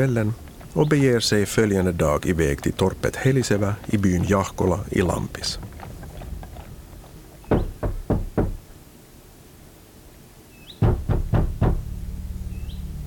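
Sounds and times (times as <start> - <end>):
speech: 0.0 - 5.8
faint ambience: 0.0 - 13.0
firm knocks on a wooden door: 7.5 - 8.6, 10.8 - 11.9.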